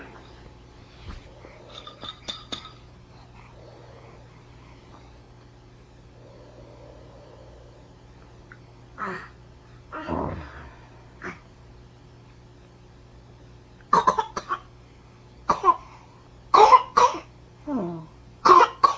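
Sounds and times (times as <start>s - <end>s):
faint low hum: 0.0s - 18.9s
baby coughing in short dry bursts: 13.9s - 14.7s, 15.5s - 15.9s, 16.5s - 17.3s, 18.4s - 18.9s.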